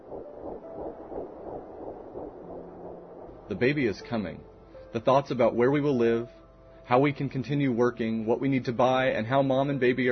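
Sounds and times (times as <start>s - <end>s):
baby's heartbeat whooshing pulses on a fetal monitor: 0.0s - 4.7s
speech: 3.5s - 10.1s.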